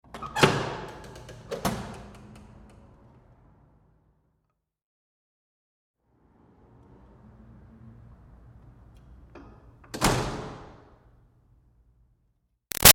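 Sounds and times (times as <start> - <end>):
commercial metal door with push bar opening and closing: 0.0 - 2.6, 9.4 - 10.8.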